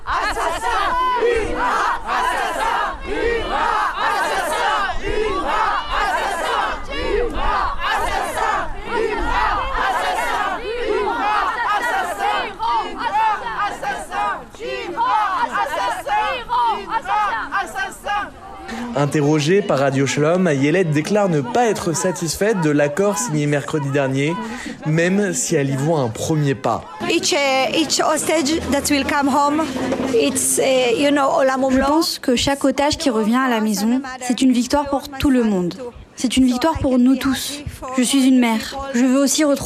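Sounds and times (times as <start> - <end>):
large angry crowd roaring and shouting at a video screening: 0.0 - 30.2
speech: 19.0 - 39.6.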